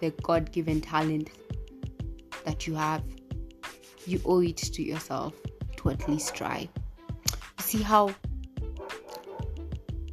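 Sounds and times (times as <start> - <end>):
speech: 0.0 - 1.5, 2.4 - 3.2, 4.0 - 6.8, 7.7 - 8.3
dog barking loudly: 6.0 - 6.6, 8.8 - 9.6.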